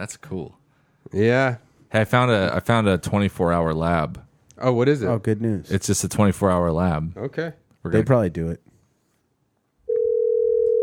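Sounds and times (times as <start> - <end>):
speech: 0.0 - 8.7
telephone ringing: 9.9 - 10.8.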